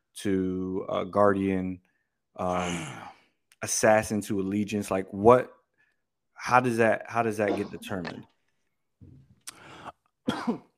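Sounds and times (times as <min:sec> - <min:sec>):
speech: 0:00.2 - 0:03.0, 0:03.6 - 0:05.6, 0:06.4 - 0:08.3, 0:10.4 - 0:10.7
low throat-clearing rumble: 0:07.5 - 0:08.2, 0:10.3 - 0:10.7
sharp harsh coughs: 0:07.5 - 0:08.2, 0:10.3 - 0:10.7.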